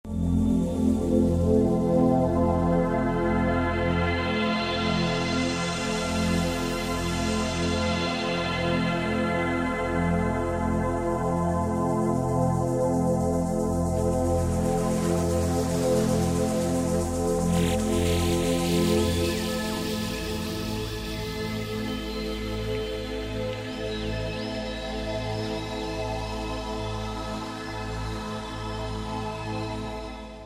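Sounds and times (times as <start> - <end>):
432 meditation music: 0.2 - 30.4.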